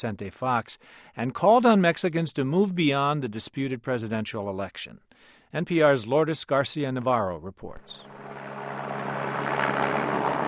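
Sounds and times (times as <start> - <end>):
speech: 0.0 - 8.4
helicopters whirring overhead above a presidential inauguration in Mexico: 8.0 - 10.4.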